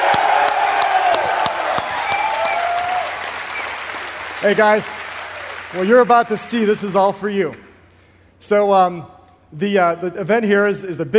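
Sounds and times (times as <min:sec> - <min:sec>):
crowd whooping and cheering: 0:00.0 - 0:05.9
large crowd applauding: 0:00.0 - 0:06.8
speech: 0:04.4 - 0:05.0, 0:05.7 - 0:07.7, 0:08.4 - 0:11.1.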